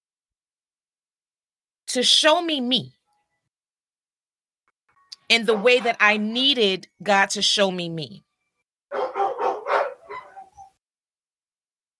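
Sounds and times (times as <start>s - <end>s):
speech: 2.0s - 3.0s, 5.3s - 8.3s
dogs barking: 5.5s - 6.1s, 8.9s - 10.7s
dog yips: 8.9s - 10.8s.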